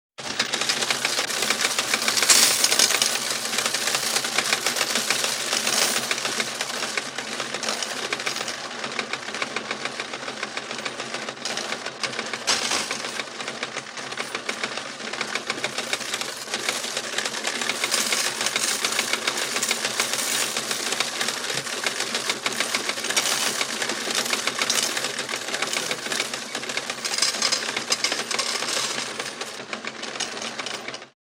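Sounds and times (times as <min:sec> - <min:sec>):
coin sorter: 0:00.2 - 0:31.1.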